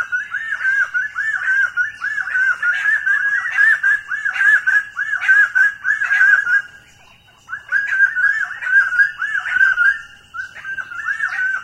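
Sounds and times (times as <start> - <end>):
common quail three-syllable calls: 0.0 - 11.6.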